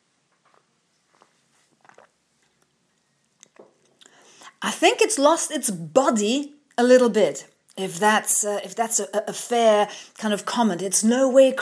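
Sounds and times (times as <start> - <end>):
sipping milky coffee: 0.4 - 4.6
speech: 4.6 - 11.6.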